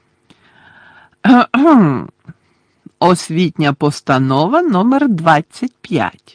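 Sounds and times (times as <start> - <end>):
faint hum: 0.0 - 6.3
voice imitating throat clearing: 1.2 - 2.4
speech: 1.3 - 2.2, 3.0 - 6.3.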